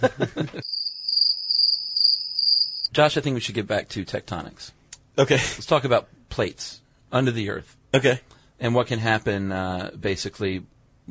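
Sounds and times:
speech: 0.0s - 0.5s, 3.0s - 11.0s
laughter: 0.0s - 0.6s
crickets chirping: 0.6s - 2.9s.

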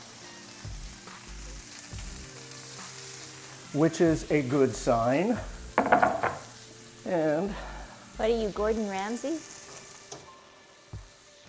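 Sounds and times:
food sizzling in a hot pan: 0.0s - 11.4s
speech: 3.7s - 6.0s, 7.1s - 9.5s
thumps and clatters of items shifting in a pan: 5.7s - 6.5s.

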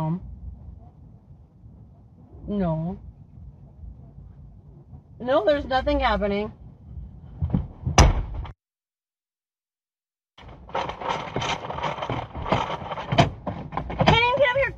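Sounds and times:
speech: 2.5s - 3.1s, 5.2s - 6.6s
car door yanked and rattled without opening: 7.4s - 8.5s, 10.4s - 14.7s
car door clunk: 7.5s - 8.5s.

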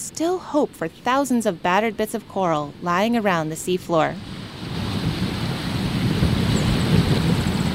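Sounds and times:
ocean surf roaring at a tall dune near Vega Baja Puerto Rico: 0.0s - 7.7s
speech: 0.2s - 4.4s
gusting wind buffeting the microphone on a coastal dune: 4.1s - 7.7s.

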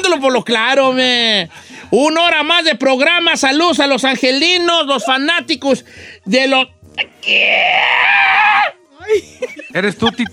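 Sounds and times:
speech: 0.0s - 10.3s
man screaming loudly: 7.1s - 8.8s
laughter: 9.0s - 10.3s.

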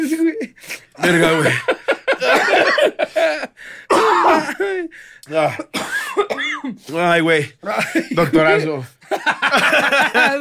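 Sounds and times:
speech: 0.4s - 1.8s, 5.4s - 5.8s, 7.1s - 10.3s
laughter: 1.0s - 3.6s, 7.6s - 10.3s
loud rough raspy coughs: 1.0s - 4.9s, 5.5s - 6.8s.

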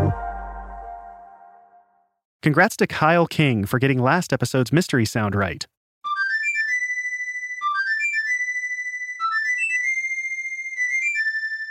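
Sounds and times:
flute melody from a classic fantasy video game: 0.0s - 1.9s, 6.1s - 11.6s
speech: 2.4s - 5.7s.

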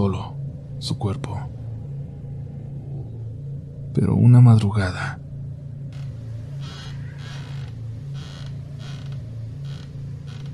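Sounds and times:
low constant hum: 0.0s - 10.5s
speech: 0.1s - 1.6s, 4.0s - 5.2s
rocking chair creaking: 5.9s - 10.5s.

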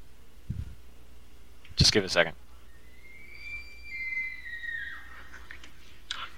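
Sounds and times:
faint hiss: 0.0s - 6.3s
speech: 1.8s - 2.4s
elk bugling: 2.8s - 5.4s.

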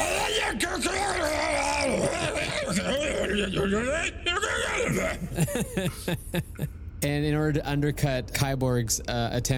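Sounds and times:
man growling made-up language imitating Draconic speech: 0.0s - 5.4s
laughter: 1.8s - 3.8s, 5.0s - 6.7s
speech: 2.2s - 9.5s.

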